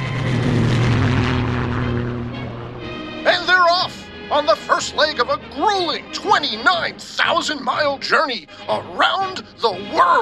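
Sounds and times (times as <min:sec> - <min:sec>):
propeller airplane roaring at takeoff: 0:00.0 - 0:07.8
speech: 0:04.4 - 0:10.1.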